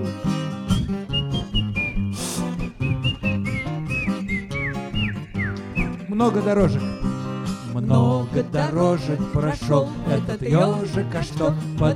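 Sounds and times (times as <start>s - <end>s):
steady instrumental backing: 0.0s - 8.6s
whistled tune: 0.4s - 7.1s
speech: 6.2s - 7.0s, 7.8s - 11.9s.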